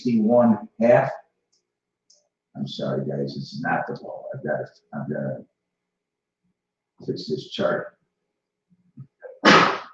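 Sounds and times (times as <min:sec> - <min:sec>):
speech: 0:00.0 - 0:01.2, 0:02.6 - 0:05.5, 0:07.0 - 0:08.0
person sneezing: 0:09.3 - 0:09.9.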